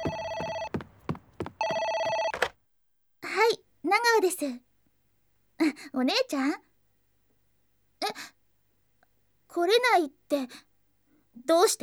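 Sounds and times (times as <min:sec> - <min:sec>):
electronic telephone ringing: 0:00.0 - 0:02.5
speech: 0:03.9 - 0:04.7, 0:05.6 - 0:06.7, 0:08.1 - 0:08.4, 0:09.5 - 0:10.7, 0:11.4 - 0:11.8.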